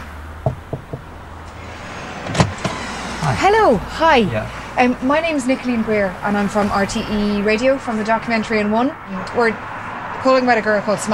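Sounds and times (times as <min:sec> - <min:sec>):
low outdoor rumble: 0:00.0 - 0:11.1
firm knocks on a terraced house door on a main road in Ireland: 0:00.4 - 0:01.1
speech: 0:03.3 - 0:11.1.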